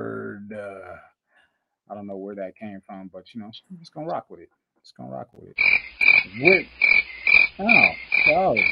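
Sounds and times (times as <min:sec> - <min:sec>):
speech: 0:02.5 - 0:08.7
crickets chirping: 0:05.6 - 0:08.7
frogs croaking: 0:05.6 - 0:08.7.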